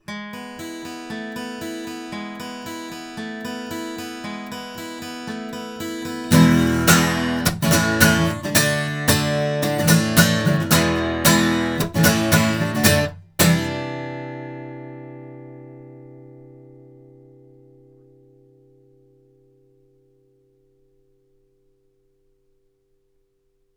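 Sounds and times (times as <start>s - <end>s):
guitar recorded with Behringer ECM8000 microphones: 0.0s - 23.3s.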